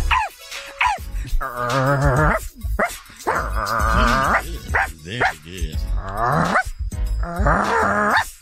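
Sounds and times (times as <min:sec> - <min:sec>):
person imitating a dog with barks and yelping howls: 0:00.1 - 0:08.3
growly breaths: 0:01.0 - 0:08.1
speech: 0:01.4 - 0:02.5.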